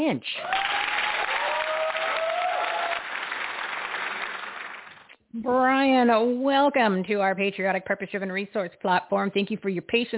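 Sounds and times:
speech: 0.0 - 0.8, 5.3 - 10.1
whistles and cheers: 0.4 - 3.4
crowd applause: 0.4 - 5.1.

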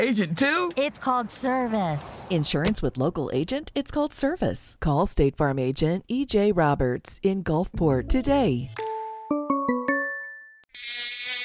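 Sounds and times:
speech: 0.0 - 8.9
bright chime notes: 8.8 - 10.7
loud mosquito buzzing: 10.7 - 11.4.

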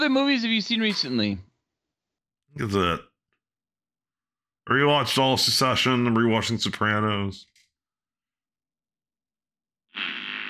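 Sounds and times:
speech: 0.0 - 1.5, 2.6 - 3.1, 4.7 - 7.5
loud raspy fart: 9.9 - 10.4.

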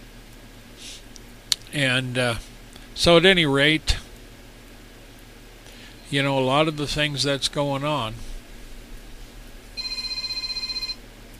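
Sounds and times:
low hum: 0.0 - 11.3
speech: 1.7 - 3.9, 6.1 - 8.3
telephone with electronic trill ringing: 9.8 - 11.0.

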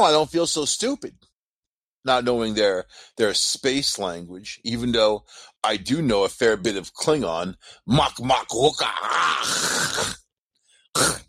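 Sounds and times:
speech: 0.0 - 1.3, 2.0 - 10.2, 11.0 - 11.2
person clearing throat loudly: 9.6 - 10.2, 11.0 - 11.2.

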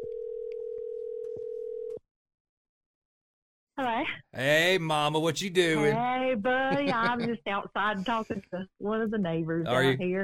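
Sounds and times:
steady telephone tone: 0.0 - 2.0
speech: 3.8 - 10.2
laughter: 6.6 - 7.4.

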